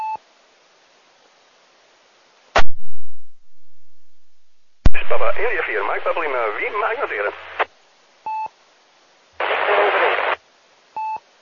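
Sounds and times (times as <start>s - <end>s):
hissing radio static with weak radio transmission: 2.6s - 7.8s, 9.4s - 10.4s
speech: 5.1s - 7.6s.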